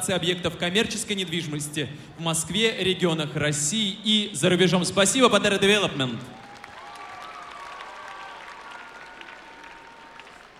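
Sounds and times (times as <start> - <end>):
speech: 0.0 - 6.4
audience applauding: 6.3 - 10.5.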